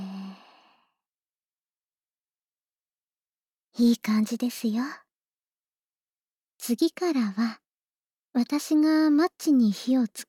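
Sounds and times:
breathy exhale during a guided breathing exercise: 0.0 - 0.9
speech: 3.8 - 5.0, 6.6 - 7.6, 8.4 - 10.2.

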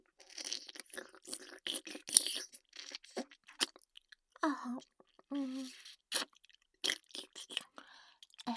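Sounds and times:
crunchy chewing while tasting food: 0.2 - 4.2, 5.0 - 8.5.

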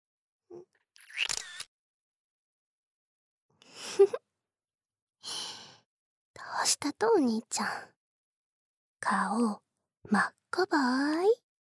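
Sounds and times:
smartphone camera shutter after self-timer: 1.0 - 1.7
speech: 6.8 - 8.0, 9.0 - 11.4.

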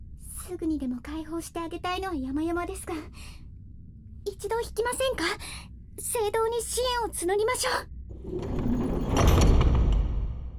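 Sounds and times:
speech: 0.5 - 3.4, 4.2 - 9.2
heavy door mechanism sliding shut: 8.1 - 10.5.

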